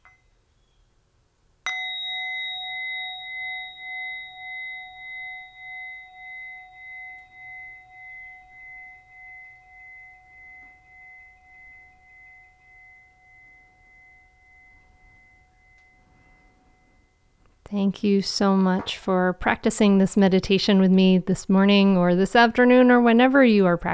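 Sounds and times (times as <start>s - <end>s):
meditation bell ringing: 1.7s - 17.5s
speech: 17.7s - 23.9s.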